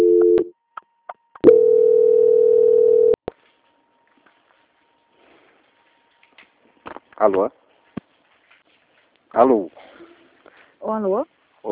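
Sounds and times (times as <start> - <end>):
telephone line tone during a call transfer: 0.0 - 0.5, 1.4 - 3.2
speech: 7.2 - 7.6, 9.4 - 9.9, 10.8 - 11.6.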